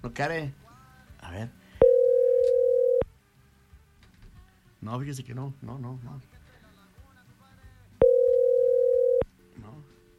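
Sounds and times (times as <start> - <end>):
speech: 0.0 - 0.6, 1.2 - 1.6, 4.8 - 6.4
telephone ringing tone on a call that will not connect: 1.8 - 3.1, 8.0 - 9.2.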